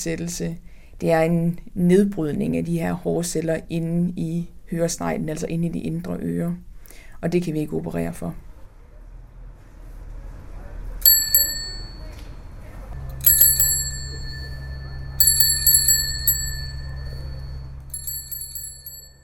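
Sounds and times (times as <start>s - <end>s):
speech: 0.0s - 8.5s
bicycle bell ringing: 11.0s - 12.2s, 13.0s - 19.2s
low steady rumble: 11.1s - 19.2s.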